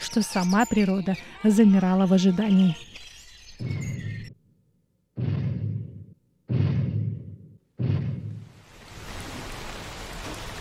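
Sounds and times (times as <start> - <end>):
speech: 0.2 - 2.9
deep booming thuds: 5.2 - 8.5
heavy rain pouring: 8.4 - 10.5.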